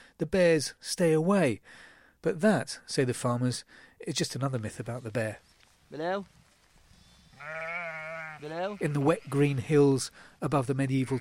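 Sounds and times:
faint noise: 0.0 - 11.2
speech: 0.2 - 6.4, 7.4 - 7.8, 8.4 - 11.2
sheep bleating: 7.3 - 10.0, 10.8 - 11.2.

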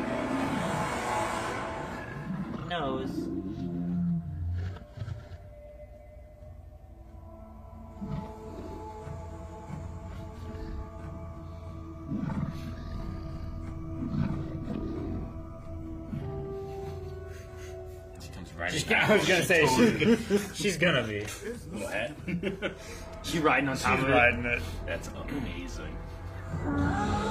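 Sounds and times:
steady low drone: 0.0 - 4.6, 5.4 - 27.3
large cat-like creature roaring and growling: 0.0 - 5.4, 7.9 - 16.8, 26.4 - 27.3
speech: 2.8 - 3.4, 18.9 - 27.3
laughter: 18.9 - 23.3.

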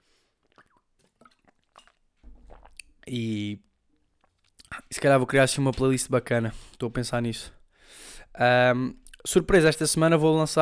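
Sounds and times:
person sipping water: 0.1 - 3.1, 4.0 - 4.9
gulp: 0.4 - 3.0
speech: 3.1 - 3.7, 5.0 - 10.6.

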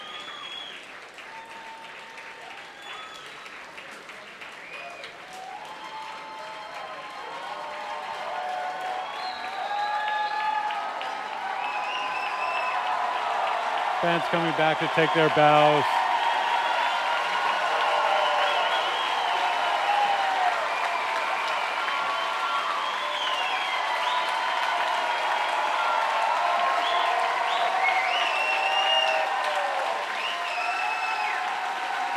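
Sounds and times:
crowd whistles and cheers: 0.0 - 32.1
large concert crowd applauding: 0.0 - 32.1
speech: 14.0 - 16.0.

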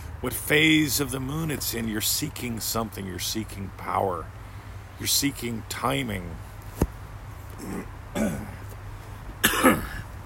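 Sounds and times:
speech: 0.2 - 4.4, 5.0 - 6.5, 7.6 - 8.4
person clearing throat in a portable disposable hot tub: 7.6 - 8.6, 9.4 - 10.0
person coughing after breathing in a bug in a portable disposable hot tub: 7.6 - 8.6, 9.4 - 10.1.

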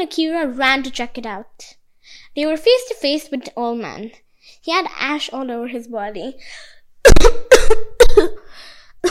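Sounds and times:
speech: 0.0 - 1.8, 2.4 - 8.4
people coughing harshly after an explosion in a Japanese-style house: 7.1 - 8.4.

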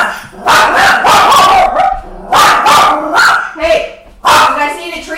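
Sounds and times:
dog barking: 0.0 - 3.6, 4.2 - 4.8.

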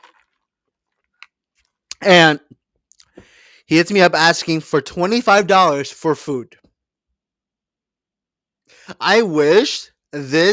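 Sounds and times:
sipping a drink: 0.0 - 2.0
speech: 2.0 - 2.5, 3.7 - 6.6, 8.9 - 10.5.

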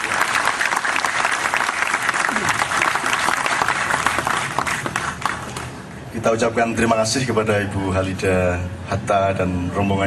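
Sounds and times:
applause from a sizable audience: 0.0 - 5.8
speech: 6.2 - 10.0.

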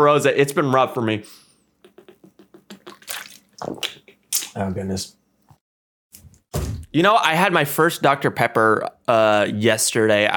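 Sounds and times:
speech: 0.0 - 1.4, 3.6 - 5.2, 6.9 - 10.3
sipping and swallowing water: 1.9 - 4.6
wet slurps of water: 2.0 - 4.6.

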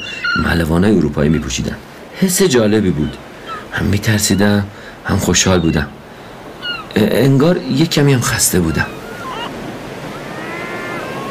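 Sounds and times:
wind: 0.0 - 11.3
speech: 0.4 - 6.0, 6.9 - 9.0
sea waves washing against the hull of a ship: 1.0 - 11.3
faint high whistling tones: 10.1 - 11.3.

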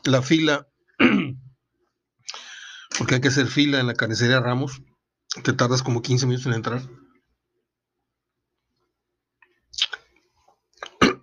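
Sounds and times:
speech: 0.0 - 0.7, 3.0 - 7.0
person sipping and swallowing diet cola: 10.8 - 11.2.

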